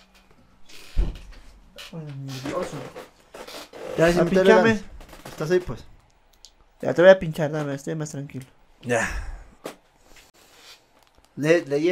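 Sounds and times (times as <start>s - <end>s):
faint creaking rustle of movement: 0.0s - 5.8s
door swinging shut with soft thud: 0.9s - 1.3s
speech: 4.0s - 5.9s, 6.8s - 9.3s, 11.4s - 11.9s.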